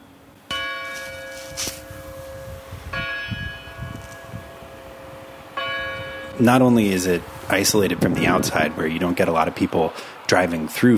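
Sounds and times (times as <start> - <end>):
church bells ringing: 0.5 - 7.2
speech: 6.4 - 10.9.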